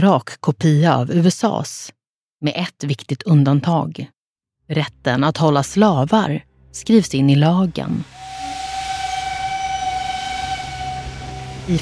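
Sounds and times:
speech: 0:00.0 - 0:08.4
steam train rumbling on rails: 0:08.1 - 0:11.8
sustained high steam train whistle tone: 0:08.1 - 0:11.8.

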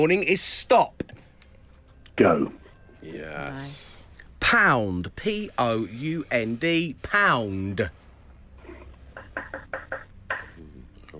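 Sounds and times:
speech: 0:00.0 - 0:01.0, 0:02.2 - 0:08.0
sharp knocks: 0:09.2 - 0:10.6.

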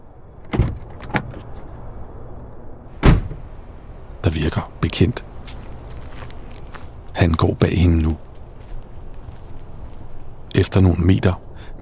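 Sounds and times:
car door unlatching and thunking: 0:03.0 - 0:03.5
speech: 0:04.4 - 0:05.3, 0:07.2 - 0:08.2, 0:10.6 - 0:11.8.

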